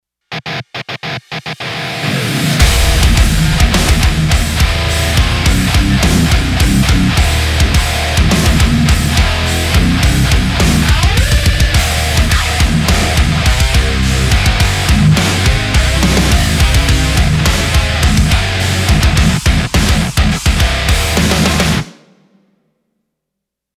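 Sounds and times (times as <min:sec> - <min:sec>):
modern metal music: 0:00.3 - 0:21.9.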